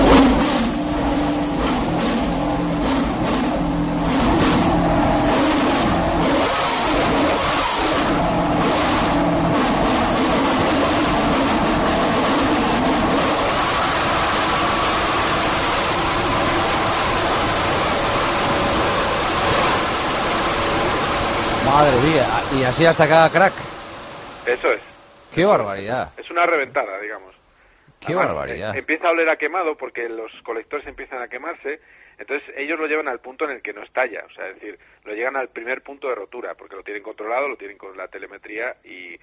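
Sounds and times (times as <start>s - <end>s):
engine revved hard to its limit: 0.0s - 24.4s
speech: 22.7s - 23.7s, 24.5s - 27.4s, 28.0s - 39.2s.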